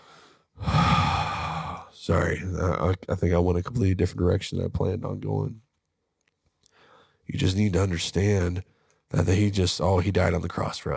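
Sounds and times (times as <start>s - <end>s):
person imitating labored struggling breathing: 0.0s - 2.0s, 6.7s - 7.2s
speech: 2.0s - 5.6s, 7.3s - 10.9s.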